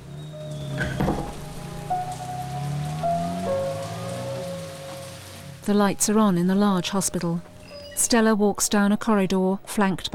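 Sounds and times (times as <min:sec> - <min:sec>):
heavy rain falling at night: 0:00.0 - 0:07.7
speech: 0:05.7 - 0:10.1.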